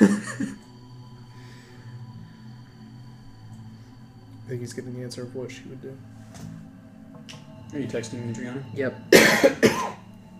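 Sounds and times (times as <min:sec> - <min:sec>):
person coughing with a raspy exhale: 0:00.0 - 0:00.6, 0:09.1 - 0:10.0
speech: 0:04.5 - 0:06.2, 0:07.7 - 0:10.0.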